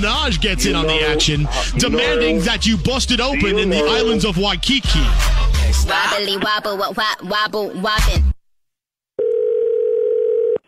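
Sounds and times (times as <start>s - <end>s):
speech: 0.0s - 8.3s
telephone dial tone: 9.2s - 10.6s.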